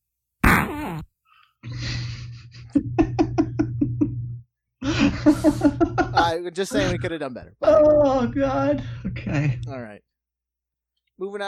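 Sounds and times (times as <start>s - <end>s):
loud fart breaking into sputtering pops: 0.4s - 1.1s
speech: 0.9s - 2.2s, 5.2s - 10.1s, 11.2s - 11.4s
laughter: 1.6s - 4.2s, 4.8s - 7.1s, 8.8s - 9.7s.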